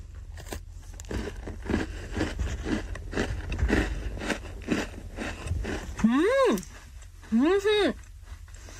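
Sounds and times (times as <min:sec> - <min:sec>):
biting and chewing a crunchy almond-flavoured sablé biscuit: 0:00.3 - 0:07.2
speech: 0:07.3 - 0:08.0.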